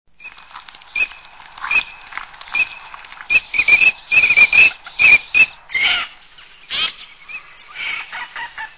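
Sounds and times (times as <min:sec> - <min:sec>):
Anas crecca calling: 0:03.3 - 0:08.7.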